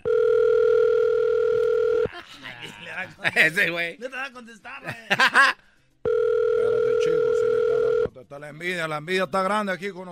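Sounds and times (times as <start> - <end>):
telephone ringback tone on an outgoing call: 0.0 - 2.1, 6.0 - 8.1
faint laughter: 2.1 - 3.7, 4.8 - 5.6
speech: 3.2 - 5.6, 8.2 - 10.0.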